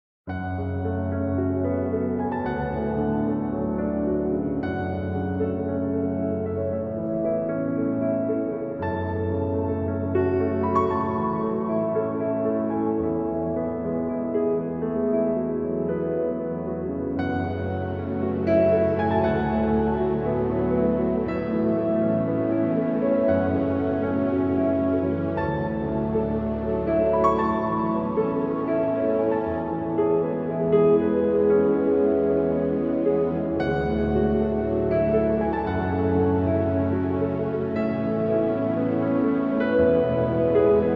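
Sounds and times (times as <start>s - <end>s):
mystical relaxing piano music: 0.3s - 40.9s.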